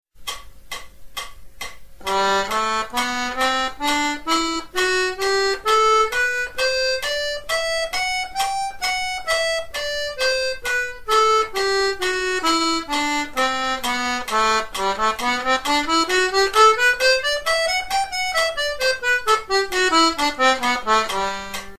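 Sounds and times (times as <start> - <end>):
diatonic accordion G scale push and pull: 2.0 - 21.7.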